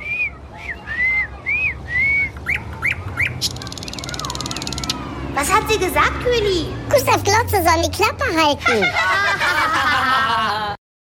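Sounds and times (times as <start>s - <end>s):
nightingale singing: 0.0s - 5.0s
speech: 5.4s - 9.2s
laughter: 8.6s - 10.8s.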